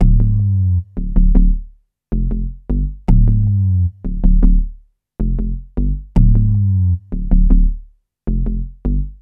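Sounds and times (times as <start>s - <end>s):
rhythm: 0.0s - 9.2s.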